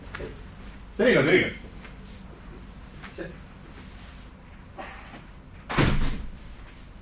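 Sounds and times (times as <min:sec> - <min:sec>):
faint shuffling handling sounds: 0:00.0 - 0:05.7, 0:06.4 - 0:07.0
speech: 0:01.0 - 0:01.6
door pushed shut with a solid thud: 0:05.7 - 0:06.4.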